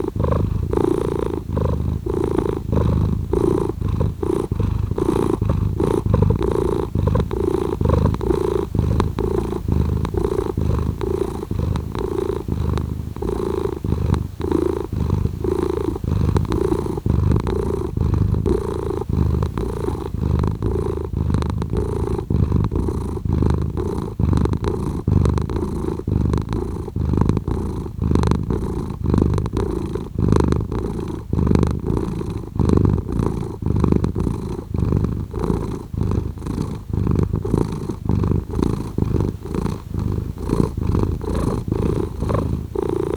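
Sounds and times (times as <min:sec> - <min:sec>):
cat purring: 0:00.0 - 0:43.1.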